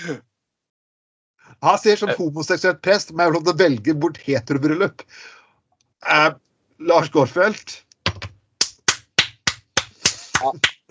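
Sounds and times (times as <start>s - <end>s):
speech: 0.0s - 0.3s, 1.5s - 5.4s, 6.0s - 7.8s, 10.4s - 10.9s
single person clapping hands: 8.1s - 10.9s.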